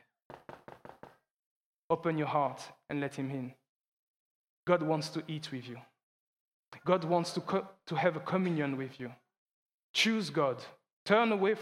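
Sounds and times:
knocking on a door: 0.3s - 1.2s
speech: 1.9s - 3.6s, 4.7s - 5.9s, 6.8s - 9.2s, 9.9s - 11.5s.

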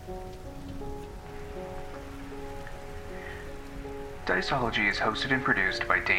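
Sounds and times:
rain pattering on a hard surface: 0.0s - 6.1s
speech: 4.3s - 6.1s.

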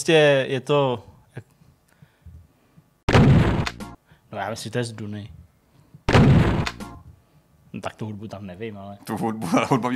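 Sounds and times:
speech: 0.0s - 1.5s, 4.3s - 5.4s, 7.7s - 9.9s
strategy video game explosion: 3.1s - 3.7s, 6.1s - 6.7s.

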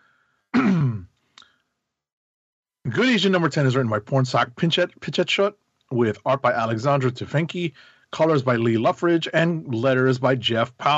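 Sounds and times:
throat clearing with a rough coughing edge: 0.6s - 1.1s
speech: 2.9s - 10.9s.

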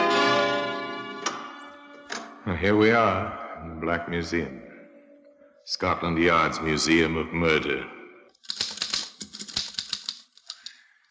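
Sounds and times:
speech: 2.4s - 4.7s, 5.7s - 8.6s
mechanical typewriter keystrokes clattering: 8.4s - 10.7s
typewriter carriage-like whir: 8.5s - 10.3s.

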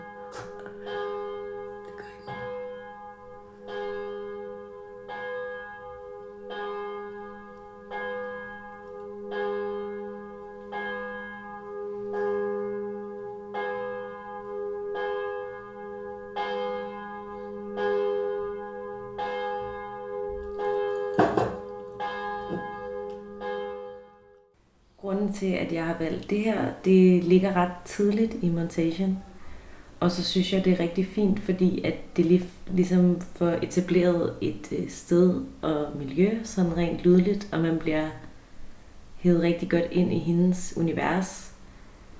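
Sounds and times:
church bells pealing: 0.0s - 24.4s
speech: 25.3s - 29.3s, 30.0s - 38.2s, 39.2s - 41.5s.

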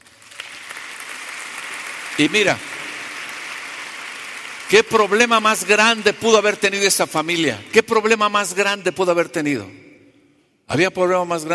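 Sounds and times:
large crowd applauding: 0.0s - 8.0s
speech: 2.2s - 2.7s, 4.7s - 9.8s, 10.7s - 11.5s.

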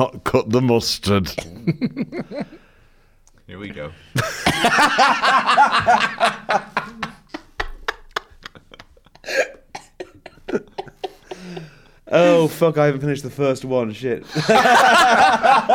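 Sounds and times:
speech: 0.0s - 2.6s, 3.5s - 7.0s, 12.1s - 15.7s
laughter: 1.4s - 2.6s, 4.2s - 9.4s, 10.1s - 12.5s, 14.3s - 15.7s
person coughing and gasping in a wheezy fit: 9.2s - 11.7s.

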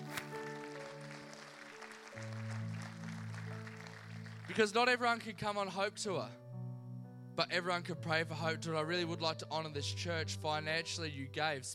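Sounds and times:
audience clapping: 0.0s - 5.3s
sustained keyboard chords: 0.0s - 11.0s
speech: 4.5s - 6.4s, 7.4s - 11.7s.

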